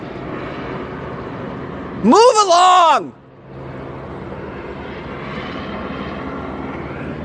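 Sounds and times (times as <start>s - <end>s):
helicopter flying overhead: 0.0s - 7.2s
man shouting: 2.0s - 3.1s
speech: 2.0s - 3.2s.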